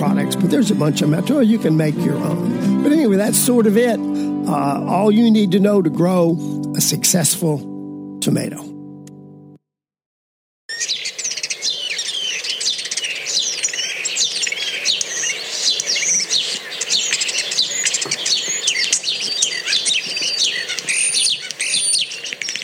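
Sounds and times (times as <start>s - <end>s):
speech: 0.0s - 8.7s
starling warbling and whistling: 10.7s - 22.6s.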